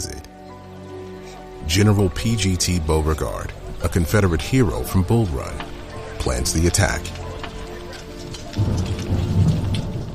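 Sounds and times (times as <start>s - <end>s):
steady rain pouring down: 0.0s - 10.1s
speech: 1.7s - 7.2s
deep rolling rumble of thunder: 8.2s - 10.1s.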